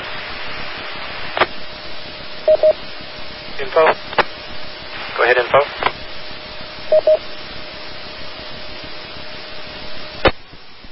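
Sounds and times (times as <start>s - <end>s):
radio channel hiss and static: 0.0s - 10.9s
speech: 3.6s - 4.1s, 5.3s - 5.7s
DTMF touch-tone beeps sent from a radio microphone: 6.9s - 7.2s.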